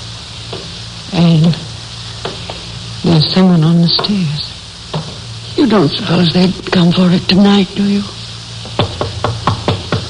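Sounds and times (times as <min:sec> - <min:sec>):
speech: 0:01.1 - 0:01.6, 0:03.2 - 0:04.5, 0:05.6 - 0:08.2
firm knocks on a wooden door: 0:08.6 - 0:10.0.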